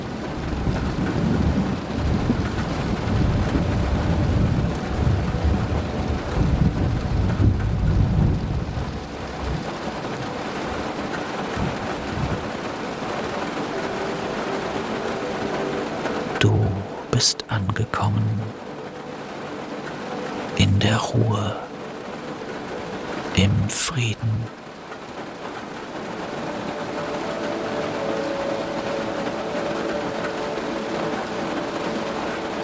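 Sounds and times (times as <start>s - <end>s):
steady rain pouring down: 0.0s - 32.6s
deep thunder rumbling and rolling: 0.2s - 14.9s
speech: 21.0s - 21.6s, 23.4s - 24.6s.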